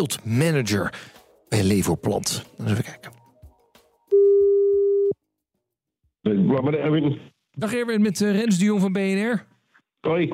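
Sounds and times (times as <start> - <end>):
speech: 0.0 - 3.2, 6.3 - 10.3
telephone call tone as a number is rung: 4.1 - 5.2.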